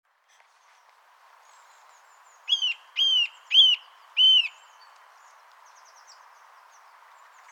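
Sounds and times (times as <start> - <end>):
Eurasian nuthatch Sitta europaea whistling: 2.5 - 4.6.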